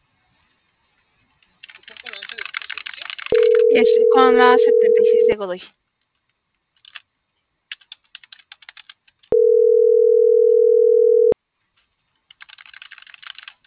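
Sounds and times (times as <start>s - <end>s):
loud steady mid-pitched telephone tone: 3.3s - 5.4s, 9.3s - 11.4s
speech: 3.8s - 5.8s.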